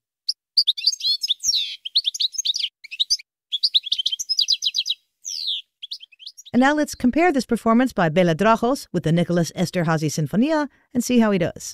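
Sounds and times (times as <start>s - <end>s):
European goldfinch singing: 0.2s - 7.8s
speech: 6.6s - 11.7s.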